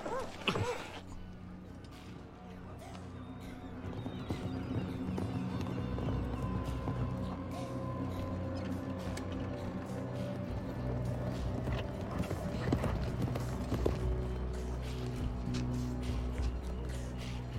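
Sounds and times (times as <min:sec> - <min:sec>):
hoofbeats of riders' horses approaching: 0:01.8 - 0:17.5.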